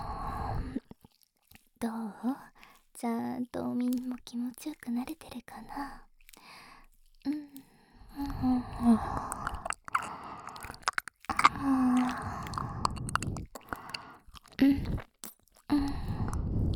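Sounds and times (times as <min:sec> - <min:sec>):
ASMR mouth sounds of an earlobe being nibbled and chewed: 0:00.8 - 0:01.7, 0:06.1 - 0:16.7
speech: 0:03.0 - 0:06.1, 0:08.4 - 0:09.3.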